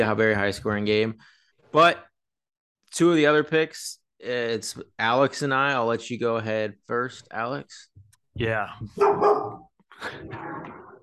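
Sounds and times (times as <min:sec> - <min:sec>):
speech: 0:00.0 - 0:02.1, 0:02.9 - 0:10.8
dog barking sharply and roughly: 0:09.0 - 0:09.7.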